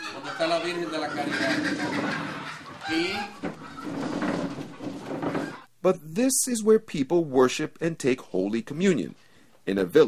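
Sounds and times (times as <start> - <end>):
agitated chickens clucking and squawking in a village place of worship: 0.0 - 5.7
speech: 0.4 - 4.2, 5.8 - 10.0.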